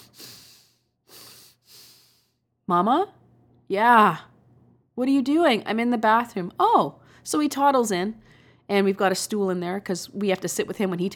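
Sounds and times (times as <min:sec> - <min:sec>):
voice imitating a toddler's heavy breathing: 0:00.0 - 0:02.4
speech: 0:02.7 - 0:04.3, 0:05.0 - 0:11.1.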